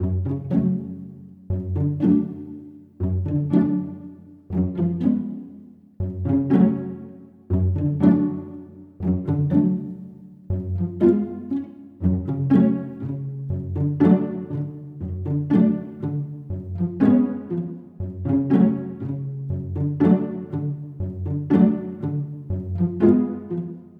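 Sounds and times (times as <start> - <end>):
cello pizzicato: 0.0 - 23.9.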